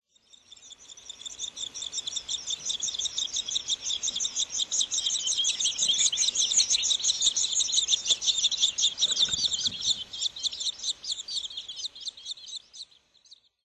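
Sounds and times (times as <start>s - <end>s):
bull-headed shrike calling in Chikuma: 0.4s - 13.5s.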